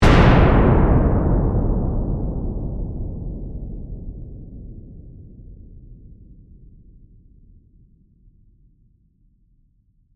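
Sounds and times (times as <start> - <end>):
dynamite explosion: 0.0 - 4.6.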